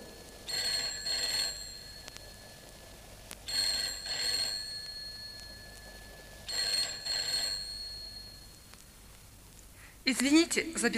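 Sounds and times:
telephone bell ringing in double bursts: 0.0s - 8.6s
speech: 10.1s - 10.9s.

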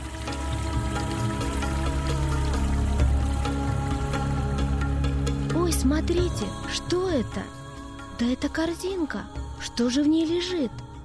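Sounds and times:
river water splashing as a woman bathes: 0.0s - 4.8s
soft sustained music: 0.0s - 11.0s
speech: 5.8s - 7.6s, 8.2s - 10.8s.

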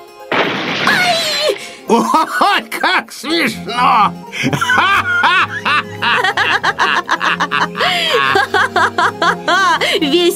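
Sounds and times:
loud smack of a falling stone striking a head: 0.3s - 1.6s
speech: 1.9s - 10.3s
laughter: 3.7s - 10.1s.

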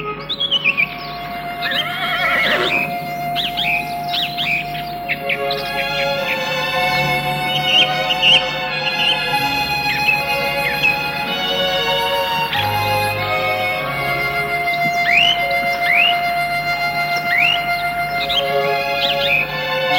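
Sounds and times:
birds chirping: 0.0s - 19.9s
horse whinnying: 1.5s - 2.9s.

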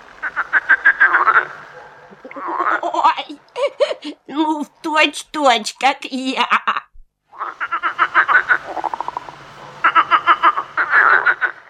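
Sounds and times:
starling imitating a frog's croaking: 0.2s - 3.6s, 7.2s - 11.6s
laughter: 2.1s - 4.3s
speech: 4.9s - 6.8s.

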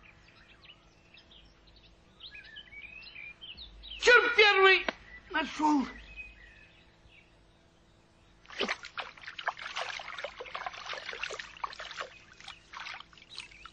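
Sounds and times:
speech: 4.7s - 6.0s
water splashing and sloshing as a hamster pulls a cage out of a lake: 8.4s - 13.7s.

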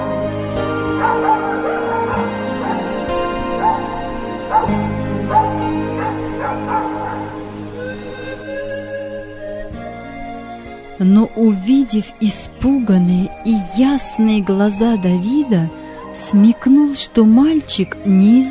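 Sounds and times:
puppy barking and yelping: 0.9s - 7.4s
speech: 11.0s - 18.4s.

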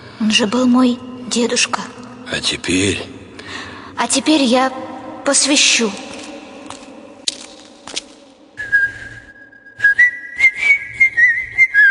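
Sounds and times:
speech: 0.2s - 6.1s
person whistling a tune: 8.6s - 11.8s.

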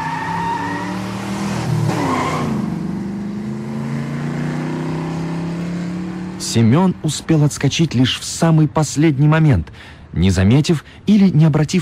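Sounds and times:
car speeding past: 0.0s - 6.4s
tires screeching: 0.0s - 6.8s
speech: 6.5s - 11.7s.

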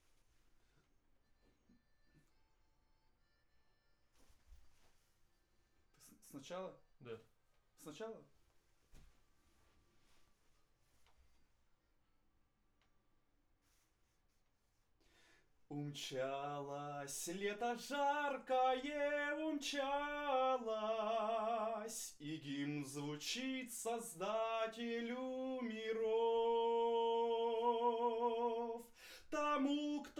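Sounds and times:
vocals through a condenser microphone: 6.0s - 8.3s, 15.1s - 30.1s.

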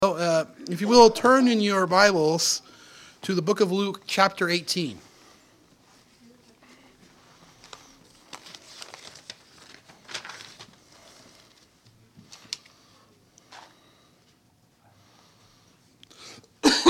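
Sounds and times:
speech: 0.4s - 5.1s
soft rustling: 5.1s - 12.6s
person coughing: 16.6s - 16.8s.

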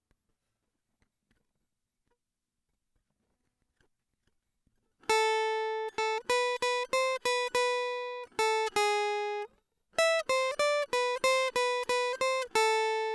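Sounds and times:
guitar: 5.0s - 13.1s.

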